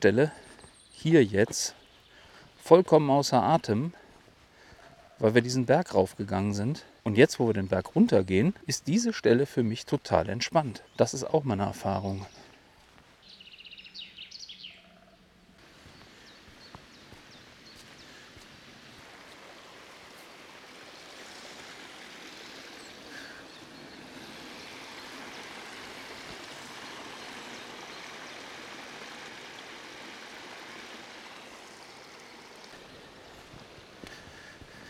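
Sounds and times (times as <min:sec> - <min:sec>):
speech: 0:00.0 - 0:00.4, 0:01.0 - 0:01.8, 0:02.6 - 0:04.0, 0:05.2 - 0:12.4
spring water running over a mountain path: 0:00.0 - 0:13.3, 0:15.6 - 0:34.8.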